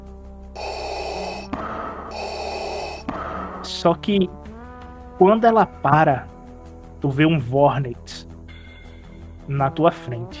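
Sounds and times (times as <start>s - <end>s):
heavy mechanical breaths with hissing rush: 0.6s - 3.7s
speech: 3.8s - 4.4s, 5.2s - 6.3s, 7.0s - 8.2s, 9.5s - 10.3s.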